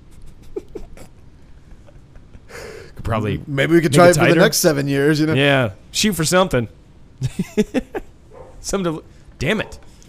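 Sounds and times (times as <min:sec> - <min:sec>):
low hiss: 0:00.0 - 0:10.0
speech: 0:03.1 - 0:08.0, 0:08.6 - 0:10.0
faint dog barks: 0:08.3 - 0:08.7, 0:09.6 - 0:09.9.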